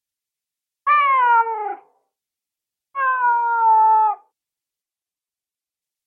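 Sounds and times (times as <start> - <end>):
cat meowing: 0.9 - 1.8, 3.0 - 4.3.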